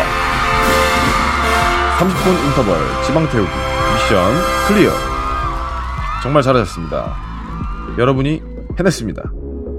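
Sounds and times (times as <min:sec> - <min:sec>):
brassy fanfare sound effect: 0:00.0 - 0:05.6
speech: 0:02.0 - 0:05.1, 0:06.2 - 0:07.4, 0:08.0 - 0:09.4.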